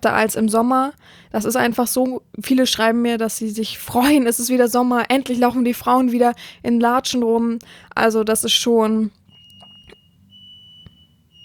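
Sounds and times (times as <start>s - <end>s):
speech: 0.0s - 9.2s
household smoke detector beeping: 9.2s - 11.4s.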